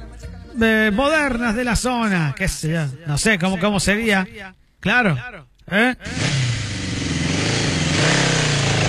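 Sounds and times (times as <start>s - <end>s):
speech: 0.6s - 6.4s
motorcycle engine revving and idling: 6.0s - 8.8s.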